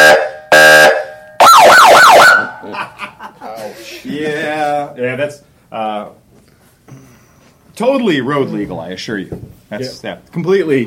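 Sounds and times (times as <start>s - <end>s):
police Harley-Davidson motorcycle siren wailing: 0.0s - 2.6s
laughter: 2.6s - 4.7s
speech: 4.8s - 6.2s, 7.8s - 10.8s.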